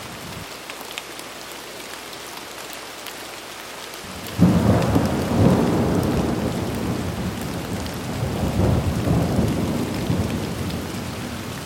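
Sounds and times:
mild rain in a steady even hiss: 0.0s - 11.6s
deep rumble of thunder: 4.3s - 11.6s.

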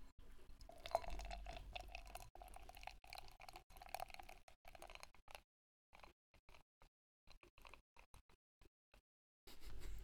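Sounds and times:
beer pouring into a glass: 0.6s - 5.1s.

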